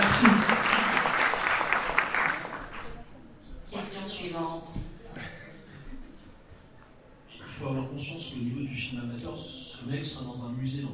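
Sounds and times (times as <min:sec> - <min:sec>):
audience applause: 0:00.0 - 0:03.1
speech: 0:08.4 - 0:10.9.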